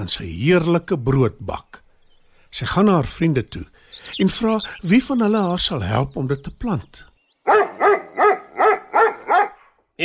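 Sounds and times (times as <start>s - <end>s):
speech: 0.0s - 1.8s, 2.5s - 7.7s
dog barking: 7.4s - 9.8s.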